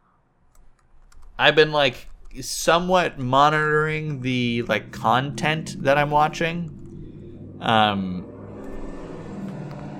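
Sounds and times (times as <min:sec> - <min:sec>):
steady low traffic rumble: 0:00.9 - 0:09.9
speech: 0:01.4 - 0:06.8, 0:07.6 - 0:08.3
car roaring past outside: 0:02.9 - 0:09.9.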